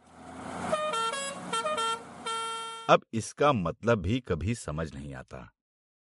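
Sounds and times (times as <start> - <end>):
steady hum of traffic: 0.0 - 3.0
vehicle horns honking in sustained harmonic blasts: 0.6 - 3.0
speech: 2.9 - 5.6.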